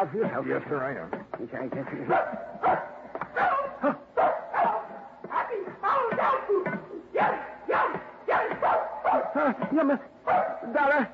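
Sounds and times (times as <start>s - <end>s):
speech: 0.0s - 3.0s, 3.8s - 4.0s, 9.4s - 11.1s
female dog giving drawn-out pitch-bending barks: 2.1s - 9.5s, 10.3s - 10.8s.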